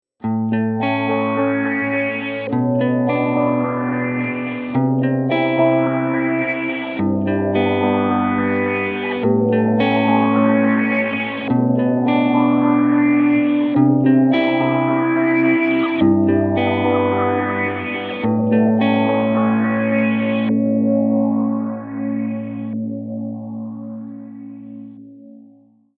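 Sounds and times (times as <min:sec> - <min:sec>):
synth filter ramp: 0:00.8 - 0:25.3.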